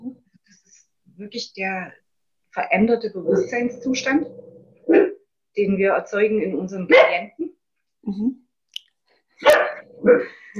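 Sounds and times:
speech: 1.2s - 2.0s, 2.6s - 7.4s, 8.1s - 8.4s, 9.4s - 10.5s
dog shut in a crate barking: 4.8s - 5.2s, 6.9s - 7.2s, 9.4s - 10.3s.

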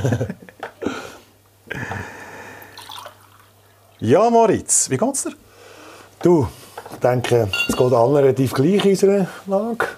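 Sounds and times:
speech: 0.0s - 0.6s, 4.0s - 5.4s, 6.2s - 9.9s
water splashing and trickling into a glass or container: 2.6s - 3.7s.

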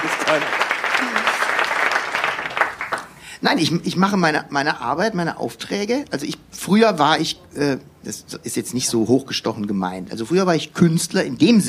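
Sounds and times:
steady applause from an audience: 0.0s - 3.1s
speech: 0.3s - 0.6s, 3.4s - 11.6s
brief voice or cheer from the crowd: 0.9s - 1.5s.

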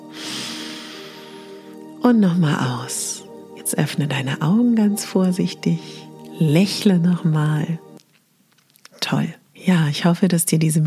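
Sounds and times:
deep inhalation through the nose during breathing exercise: 0.0s - 1.8s
soft sustained tone: 0.0s - 10.8s
speech: 2.0s - 3.1s, 3.7s - 7.9s, 9.1s - 10.8s.

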